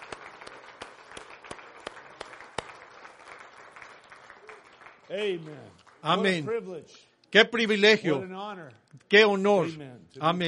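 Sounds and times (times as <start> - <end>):
audience applauding: 0.0 - 6.7
speech: 5.1 - 10.4.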